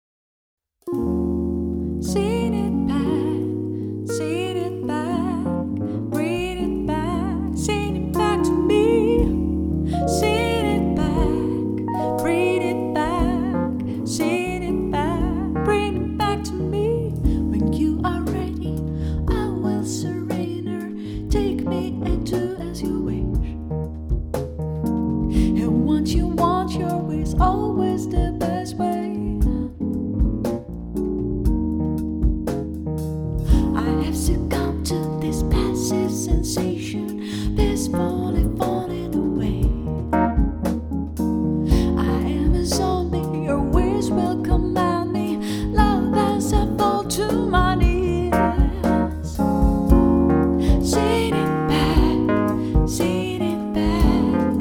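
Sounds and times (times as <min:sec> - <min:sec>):
live lounge band piano: 0:00.8 - 0:54.5
lounge band singer singing live: 0:02.1 - 0:23.2, 0:33.5 - 0:39.8, 0:41.7 - 0:50.0, 0:50.6 - 0:54.5
live lounge band drums: 0:07.2 - 0:54.5.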